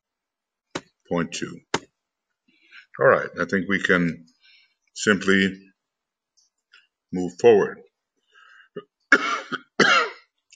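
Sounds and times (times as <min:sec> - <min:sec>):
speech: 0:01.1 - 0:01.7, 0:03.0 - 0:04.3, 0:05.0 - 0:05.7, 0:07.1 - 0:07.8, 0:08.8 - 0:09.6
person with an ongoing cough coughing harshly: 0:09.1 - 0:10.3.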